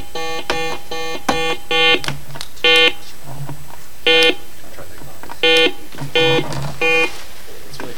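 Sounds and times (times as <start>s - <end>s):
quiz buzzer beeps during a buzzer check: 0.0s - 3.0s, 4.0s - 4.5s, 5.4s - 7.2s.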